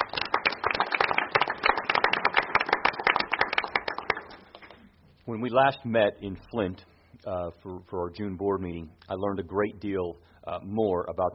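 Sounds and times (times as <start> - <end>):
audience applause, many hands clapping: 0.0 - 4.7
speech: 5.3 - 11.3.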